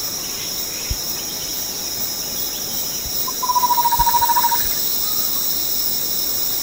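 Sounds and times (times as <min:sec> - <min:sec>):
continuous shrill insect noise in Sepilok, Borneo: 0:00.0 - 0:06.6
chestnut-winged babbler trilling call in Sepilok, Borneo: 0:03.3 - 0:04.7.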